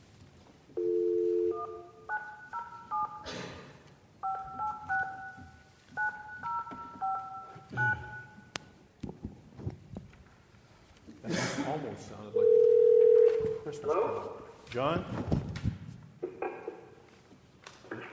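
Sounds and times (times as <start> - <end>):
telephone dial tone: 0.8 - 3.2, 4.2 - 8.3, 12.4 - 13.4
telephone keypad tones beeping as a number is dialed: 0.8 - 3.3, 4.2 - 8.5
speech: 13.7 - 15.7.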